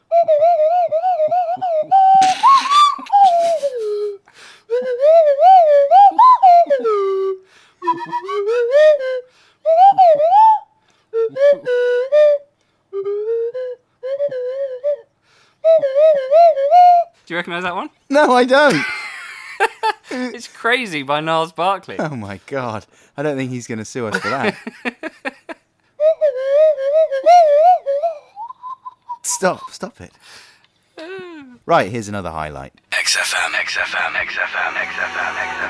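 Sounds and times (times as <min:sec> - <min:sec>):
slide whistle playing a song melody: 0:00.0 - 0:17.1, 0:26.0 - 0:29.5
laughter: 0:02.2 - 0:04.2, 0:18.6 - 0:20.4, 0:24.1 - 0:25.6, 0:33.7 - 0:35.6
speech: 0:17.5 - 0:19.0, 0:20.6 - 0:25.0, 0:29.4 - 0:30.4, 0:31.7 - 0:35.6.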